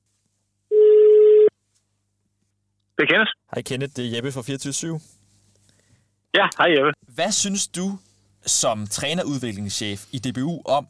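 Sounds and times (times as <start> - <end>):
ringback tone from an outgoing phone call: 0.7 - 1.5
speech: 3.0 - 5.2, 6.3 - 10.8.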